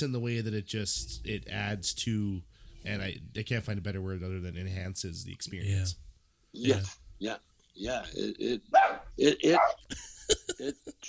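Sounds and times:
speech: 0.0s - 11.0s
dog barking in short sharp bursts: 8.7s - 9.8s.

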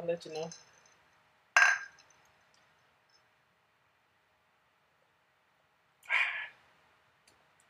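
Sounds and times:
speech: 0.0s - 0.7s
glasses clinking together in a toast: 1.6s - 2.2s.

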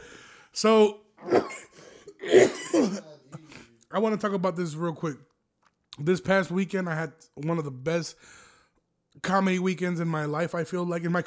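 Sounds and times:
speech: 0.6s - 1.4s, 4.0s - 5.3s, 6.0s - 8.4s, 9.2s - 11.2s
person with mucus clearing throat while sick with Omicron: 1.2s - 3.5s.

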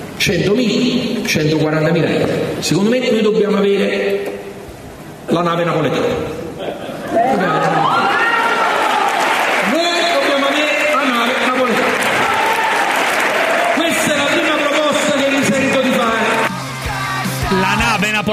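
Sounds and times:
speech: 0.3s - 4.4s, 5.3s - 6.3s
people shouting and cheering: 7.1s - 18.3s
crowd clapping: 8.5s - 16.6s.

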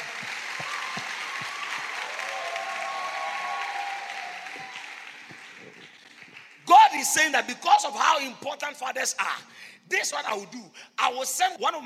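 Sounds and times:
church congregation clapping hands during a sermon: 0.0s - 7.5s
speech: 7.0s - 11.8s.

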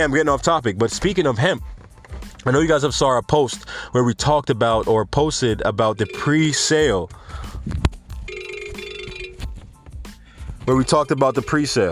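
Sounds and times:
speech: 0.0s - 1.7s, 2.4s - 7.8s, 10.7s - 11.8s
shuffling: 0.2s - 2.6s, 7.6s - 11.8s
phone's electronic ringtone: 5.8s - 7.0s, 8.2s - 9.6s, 10.7s - 11.8s.

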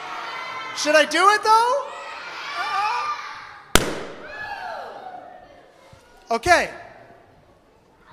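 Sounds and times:
speech: 0.8s - 1.9s, 6.3s - 6.8s
balloon popped with a tack: 3.8s - 4.4s.

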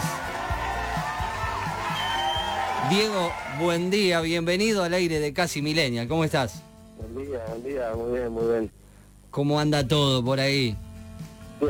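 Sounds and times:
crowd applauding: 0.0s - 4.0s
speech: 2.9s - 10.8s.

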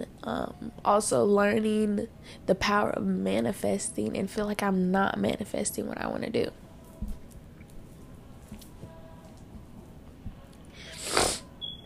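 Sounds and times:
speech: 0.3s - 6.6s
wet breathy sniffle from a person's nose: 10.8s - 11.6s.

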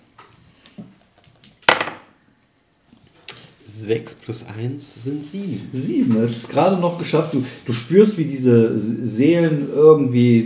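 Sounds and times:
dice clattering across a wooden table: 1.4s - 2.0s
speech: 3.7s - 10.4s.

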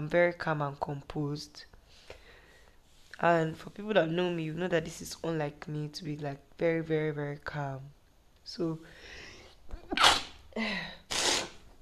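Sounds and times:
speech: 0.0s - 1.7s, 3.2s - 9.2s, 9.9s - 11.0s
person sneezing: 9.9s - 10.4s, 11.0s - 11.6s.

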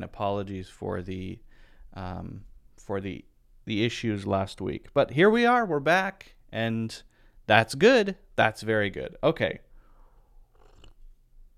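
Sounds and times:
speech: 0.0s - 9.6s
person sipping chamomile tea: 10.1s - 11.2s.

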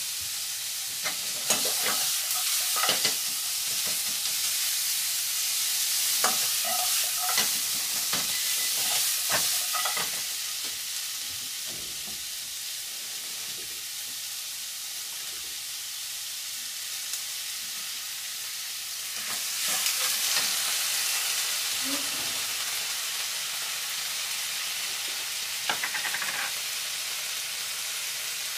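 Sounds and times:
food frying sizzle in a kitchen in the morning: 0.0s - 28.5s.

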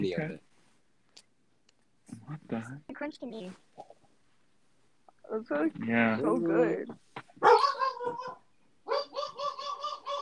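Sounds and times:
speech: 0.0s - 0.5s, 2.3s - 4.0s, 5.3s - 8.4s
big dog barking: 7.4s - 10.2s.

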